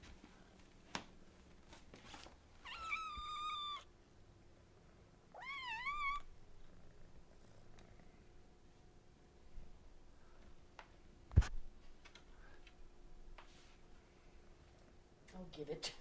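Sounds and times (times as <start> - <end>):
soft clicks and rustles: 0.0 - 2.6, 10.3 - 14.0
quiet low hum: 0.0 - 16.0
cat meowing: 2.6 - 3.9, 5.4 - 6.3
speech: 15.5 - 16.0.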